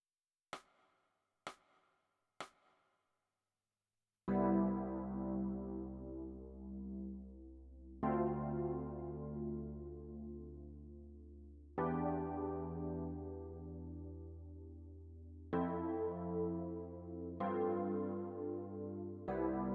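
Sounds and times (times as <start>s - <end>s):
electric piano: 4.3s - 19.7s.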